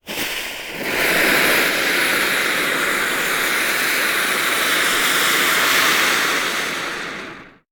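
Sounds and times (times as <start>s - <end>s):
fuse flare: 0.0s - 7.7s.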